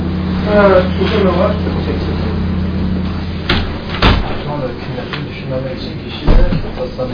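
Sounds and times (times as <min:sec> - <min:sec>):
steady low rumbling background: 0:00.0 - 0:07.1
speech: 0:00.5 - 0:02.4, 0:05.0 - 0:07.1
door opening with thuds: 0:03.4 - 0:05.2, 0:06.2 - 0:07.1.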